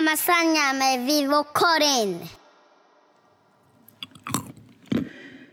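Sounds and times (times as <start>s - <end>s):
speech: 0.1s - 2.4s
crisp crunching of a snack being chewed: 3.8s - 5.5s.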